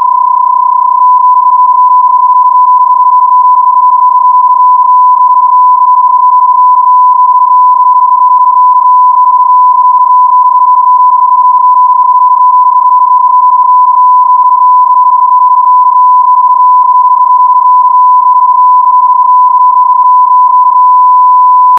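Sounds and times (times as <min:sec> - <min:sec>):
PSK31 digital mode CQ call signal: 0:00.0 - 0:21.7.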